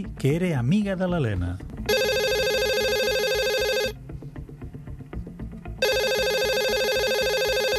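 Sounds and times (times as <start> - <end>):
speech: 0.0 - 2.0
telephone ringing with bright electronic bursts: 1.9 - 4.0, 5.8 - 7.7.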